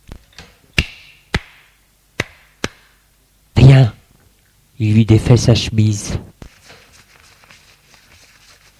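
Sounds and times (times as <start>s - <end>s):
light slaps on a face: 0.8s - 2.9s
speech: 4.8s - 6.3s.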